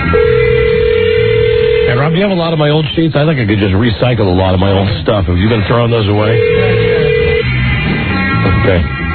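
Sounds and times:
telephone dialing tones: 0:00.1 - 0:02.2, 0:06.3 - 0:07.4
speech: 0:02.1 - 0:06.9, 0:08.6 - 0:09.0.

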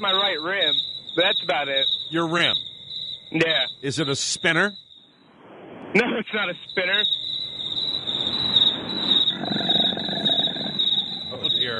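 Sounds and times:
speech: 0:00.0 - 0:02.7, 0:03.3 - 0:04.8, 0:05.9 - 0:07.2
crickets chirping in a shrill trill: 0:00.0 - 0:11.7.

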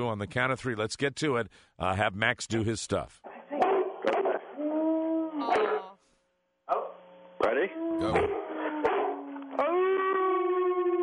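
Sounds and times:
speech: 0:00.0 - 0:03.2
dog howling: 0:04.4 - 0:06.0, 0:07.5 - 0:11.0.

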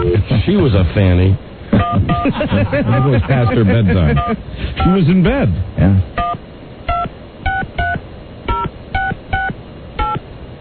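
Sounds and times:
speech: 0:00.5 - 0:06.2
laughter: 0:01.8 - 0:04.4
telephone keypad tones from dialing UK numbers: 0:06.2 - 0:10.2.

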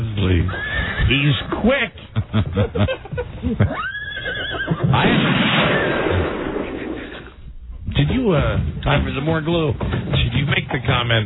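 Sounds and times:
horse whinnying: 0:00.4 - 0:01.5, 0:03.6 - 0:07.3
speech: 0:00.4 - 0:04.0, 0:08.0 - 0:11.2
laughter: 0:02.0 - 0:05.0.

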